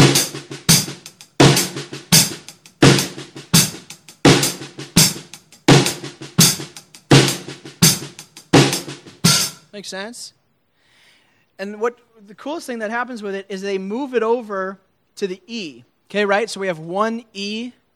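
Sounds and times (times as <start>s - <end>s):
fast paradiddles played with the hands on hi-hat and snare drum: 0.0s - 9.8s
speech: 9.8s - 10.4s, 11.6s - 17.9s.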